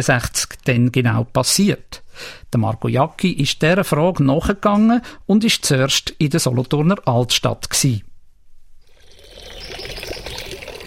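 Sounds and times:
speech: 0.0 - 8.1
fountain water splashing in old town square: 9.0 - 10.8.

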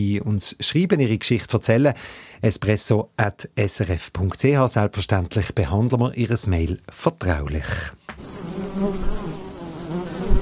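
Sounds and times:
speech: 0.0 - 9.2
bees and bumblebees buzzing over a wildflower meadow: 8.2 - 10.4.

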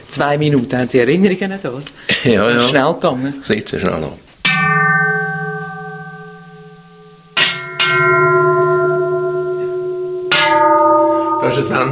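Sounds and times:
speech: 0.2 - 4.8
small bells ringing: 4.5 - 11.8.

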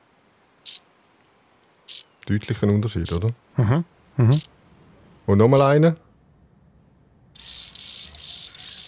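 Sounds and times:
Chorthippus mollis grasshopper song: 0.6 - 0.8, 1.9 - 2.1, 7.4 - 8.8
speech: 2.3 - 4.5, 5.3 - 6.0.

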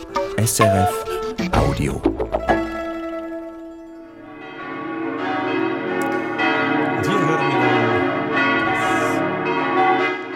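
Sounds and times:
speech: 0.4 - 2.3
church bells of the St. Oswald church in Zug pealing: 3.0 - 10.3.

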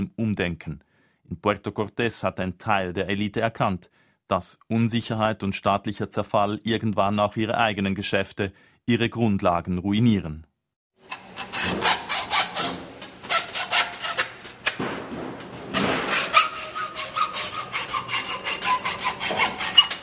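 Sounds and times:
speech: 0.0 - 11.2
hand saw cutting through wood in a workshop: 11.0 - 20.0.

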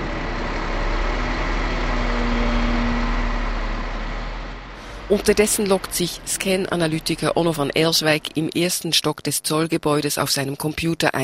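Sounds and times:
heavy truck engine rumbling and idling: 0.0 - 8.7
speech: 5.1 - 11.2.

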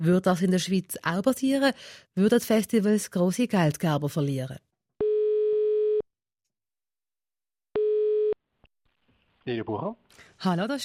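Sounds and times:
speech: 0.0 - 4.7, 9.5 - 10.8
steady buzzing telephone ringing tones: 5.0 - 6.0, 7.8 - 8.4.

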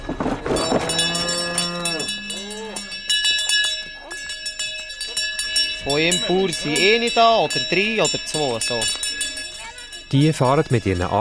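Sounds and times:
cowbells clanging and jingling: 0.0 - 11.1
cows mooing: 0.6 - 3.0
speech: 6.0 - 9.0, 10.1 - 11.1.

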